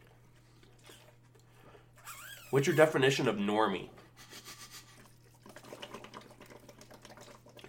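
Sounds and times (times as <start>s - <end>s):
faint electrical hum: 0.0s - 7.6s
speech: 2.5s - 4.0s
air blown through a straw bubbling into a drink: 5.0s - 7.6s.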